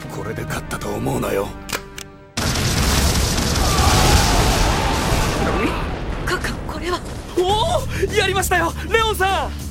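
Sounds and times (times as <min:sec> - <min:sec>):
speech: 0:00.2 - 0:01.6, 0:07.4 - 0:09.6
bomb explosion: 0:02.4 - 0:07.4
crackling debris: 0:02.4 - 0:08.3.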